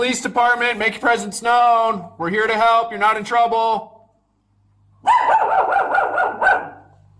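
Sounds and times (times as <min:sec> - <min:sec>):
speech: 0:00.0 - 0:03.9
low steady hum: 0:00.0 - 0:05.4, 0:06.2 - 0:07.1
dog barking: 0:05.0 - 0:07.0.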